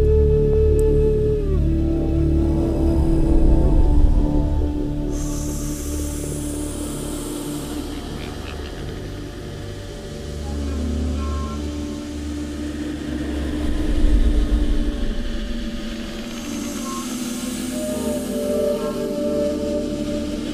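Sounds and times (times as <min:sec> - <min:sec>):
steady low droning hum: 0:00.0 - 0:20.5.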